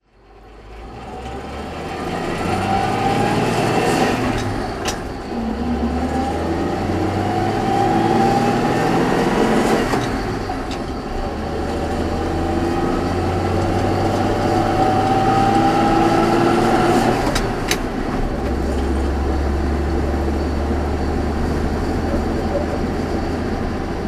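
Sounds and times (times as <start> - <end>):
1960 Opel Blitz tanker truck driving: 0.0 - 24.0.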